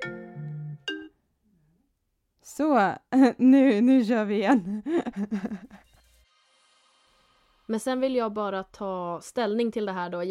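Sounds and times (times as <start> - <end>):
FaceTime incoming call ringtone: 0.0 - 1.1
speech: 2.5 - 5.8, 7.7 - 10.2
laughter: 4.5 - 5.9.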